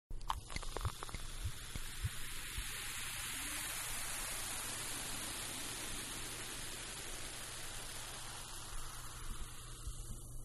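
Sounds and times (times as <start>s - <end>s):
champagne pouring in a bar: 0.1s - 10.3s.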